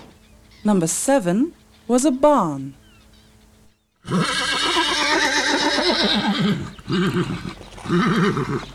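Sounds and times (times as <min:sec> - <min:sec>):
speech: 0:00.6 - 0:02.8, 0:04.0 - 0:04.4, 0:06.0 - 0:08.7
horse neighing: 0:04.0 - 0:08.7.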